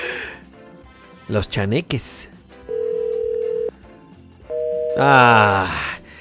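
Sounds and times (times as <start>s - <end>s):
speech: 1.3s - 2.3s, 5.0s - 5.9s
telephone call tones while redialing an unanswered call: 2.7s - 3.7s, 4.5s - 5.0s.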